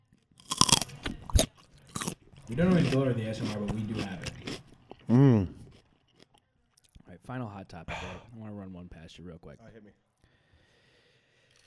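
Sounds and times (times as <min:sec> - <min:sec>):
biting into crunchy celery: 0:00.0 - 0:06.9
wet chewing crackles of celery: 0:00.0 - 0:07.1
speech: 0:02.5 - 0:04.4, 0:07.3 - 0:10.1.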